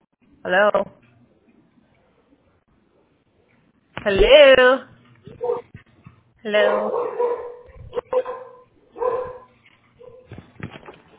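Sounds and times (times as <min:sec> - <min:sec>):
speech: 0:00.4 - 0:00.9, 0:04.0 - 0:04.9, 0:06.4 - 0:07.4
dog barking: 0:05.4 - 0:05.7, 0:06.6 - 0:10.3.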